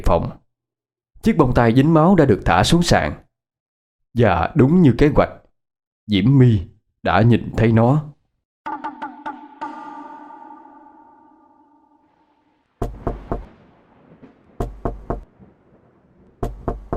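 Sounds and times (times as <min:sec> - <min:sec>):
speech: 0:00.0 - 0:00.4, 0:01.2 - 0:03.2, 0:04.2 - 0:05.4, 0:06.1 - 0:08.1
long ringing tone: 0:08.7 - 0:12.5
knocking on a door: 0:12.8 - 0:13.5, 0:14.6 - 0:15.2, 0:16.4 - 0:16.9.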